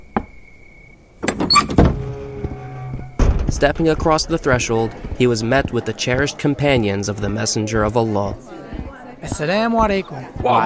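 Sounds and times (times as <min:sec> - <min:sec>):
wooden door rattling: 0:01.2 - 0:05.2
speech: 0:03.6 - 0:10.6.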